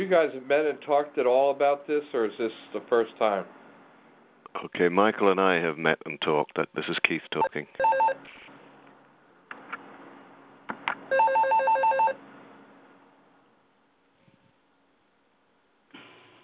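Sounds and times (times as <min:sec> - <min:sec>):
speech: 0:00.0 - 0:03.6, 0:04.5 - 0:08.3
mobile phone ringing: 0:07.8 - 0:08.2, 0:11.1 - 0:12.2.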